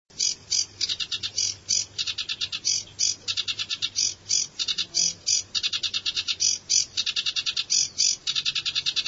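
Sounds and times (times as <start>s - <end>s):
bird chirping in fast bursts of high bright notes: 0.1s - 9.0s.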